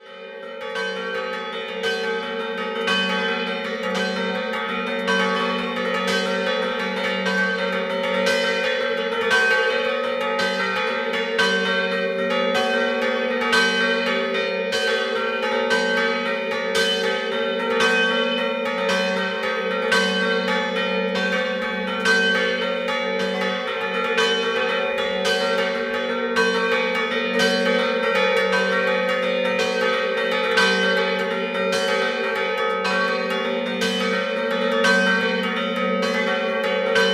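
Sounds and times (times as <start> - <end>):
scampanottata bell ringing in Caporiacco: 0.0 - 37.1.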